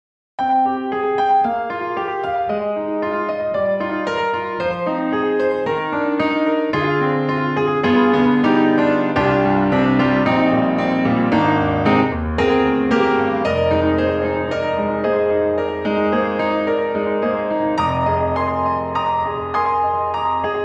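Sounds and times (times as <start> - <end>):
grand piano: 0.4 - 20.6.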